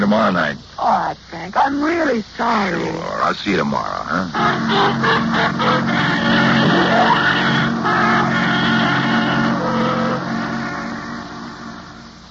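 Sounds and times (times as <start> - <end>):
speech: 0.1 - 8.0
taxi cab engine driving away: 4.3 - 12.2.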